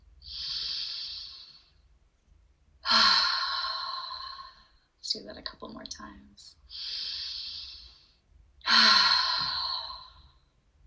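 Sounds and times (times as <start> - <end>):
deep breaths in a guided breathing exercise: 0.2 - 1.8, 2.8 - 4.9, 6.6 - 10.6
speech: 5.2 - 7.0.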